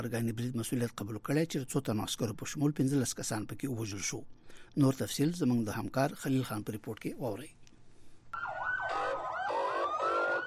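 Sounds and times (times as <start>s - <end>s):
speech: 0.0s - 7.6s
ambulance and fire engine sirens in a city after a suicide bombing: 8.4s - 10.4s.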